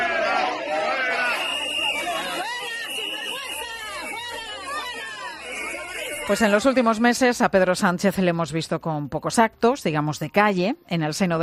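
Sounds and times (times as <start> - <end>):
large crowd booing and shouting at the head of government in Seville: 0.0 - 6.9
shrill whistles from a crowd in Seville: 1.1 - 6.6
speech: 6.3 - 11.4.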